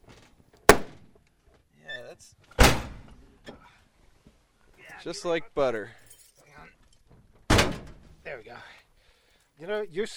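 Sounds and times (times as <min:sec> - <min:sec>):
speech: 0:02.2 - 0:02.9, 0:05.0 - 0:06.0, 0:08.3 - 0:08.8, 0:09.6 - 0:10.1
car door slamming shut: 0:02.6 - 0:03.1, 0:07.5 - 0:08.0.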